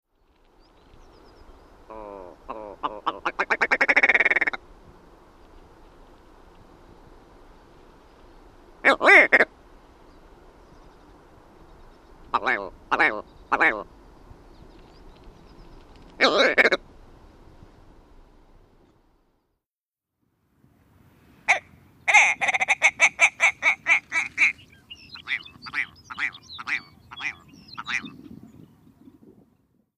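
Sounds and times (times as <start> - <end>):
willow ptarmigan call: 1.9 - 4.6, 8.8 - 9.6, 12.3 - 13.9, 16.2 - 16.8, 21.5 - 28.2.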